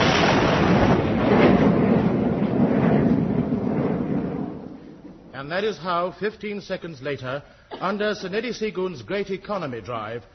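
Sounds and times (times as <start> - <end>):
comedy sound effect of a guided missile being fired: 0.0 - 5.3
speech: 5.5 - 10.3.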